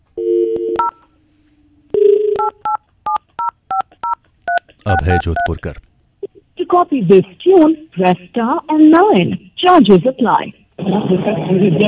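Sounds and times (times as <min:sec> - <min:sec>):
telephone keypad dialing tones: 0:00.2 - 0:01.0, 0:02.2 - 0:05.5
speech: 0:04.8 - 0:05.9, 0:06.8 - 0:11.8.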